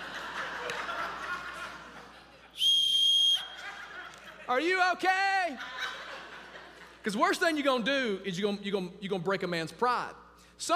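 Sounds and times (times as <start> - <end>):
laughter: 0.0 - 2.6, 3.4 - 7.2
sharp shrill whistle blast: 2.6 - 3.6
speech: 4.5 - 5.8, 7.0 - 10.7.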